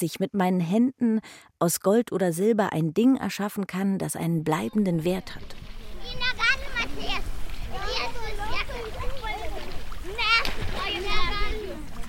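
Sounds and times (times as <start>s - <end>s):
speech: 0.0s - 7.2s
children talking and calling out: 4.5s - 12.0s
water splashing as someone wades through knee-deep water over soft sand in the Curonian Lagoon: 5.1s - 12.0s.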